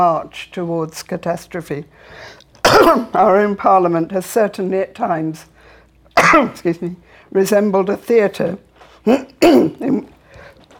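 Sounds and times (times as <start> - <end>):
speech: 0.0 - 5.5, 6.2 - 10.2
speaker clearing throat during a speech: 2.7 - 3.2, 9.1 - 10.1
speaker coughing during a speech: 2.7 - 3.2, 6.2 - 6.6, 9.1 - 10.1.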